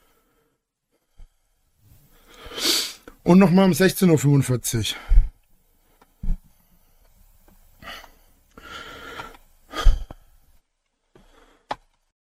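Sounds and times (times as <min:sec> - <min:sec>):
heavy breaths huffed through the nose: 0:00.0 - 0:03.2, 0:04.9 - 0:10.6, 0:11.2 - 0:11.7
speech: 0:03.3 - 0:05.2.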